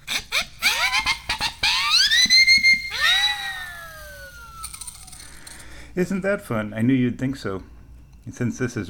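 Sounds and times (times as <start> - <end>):
homemade double siren whistle of two siren whistles glued to PVC T coupling: 0.1 - 5.2
speech: 6.0 - 8.8.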